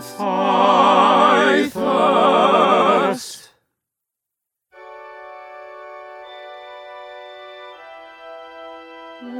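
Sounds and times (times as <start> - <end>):
concert music: 0.2 - 3.2.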